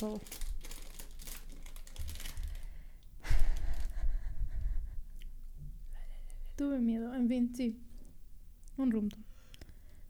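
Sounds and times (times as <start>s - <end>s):
speech: 0.0s - 0.4s, 6.6s - 7.9s, 8.8s - 9.3s
person crunching potato chips: 0.0s - 2.8s
potato chip bag crinkling and rustling: 0.0s - 3.9s.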